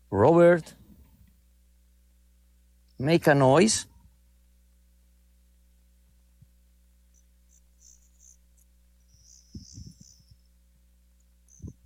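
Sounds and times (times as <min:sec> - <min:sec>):
steady low hum: 0:00.0 - 0:11.8
speech: 0:03.0 - 0:03.9
faint crickets chirping at nightfall in Dallas: 0:07.0 - 0:11.8
soft low thumps: 0:09.4 - 0:10.5.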